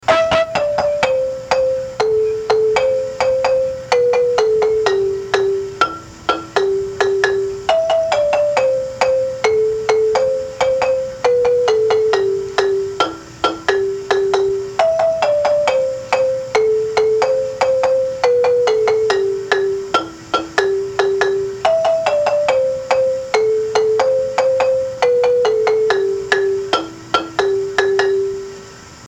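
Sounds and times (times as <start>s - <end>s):
marimba lead: 0.0s - 29.0s.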